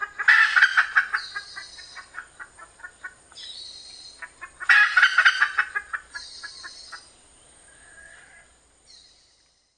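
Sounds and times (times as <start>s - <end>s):
red junglefowl harsh calls: 0.0s - 3.2s, 4.1s - 7.1s, 7.7s - 8.5s.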